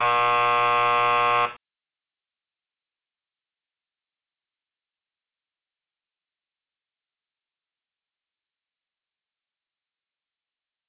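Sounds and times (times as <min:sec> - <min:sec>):
basketball buzzer: 0:00.0 - 0:01.6.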